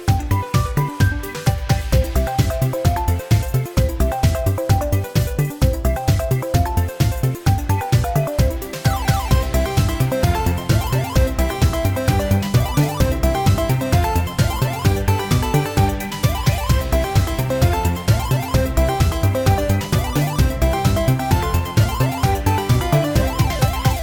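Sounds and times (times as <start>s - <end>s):
freespin melody: 0.1s - 24.0s.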